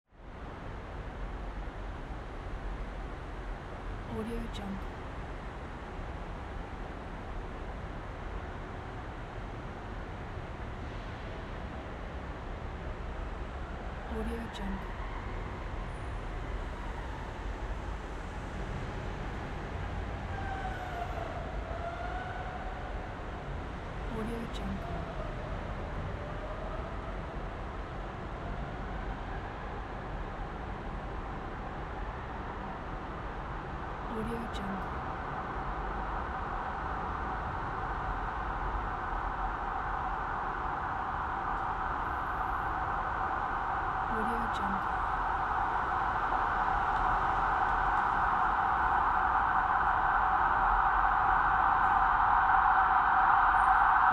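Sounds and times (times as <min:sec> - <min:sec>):
traffic jam in a road tunnel: 0:00.1 - 0:54.1
emergency vehicles in a road tunnel: 0:12.5 - 0:54.1.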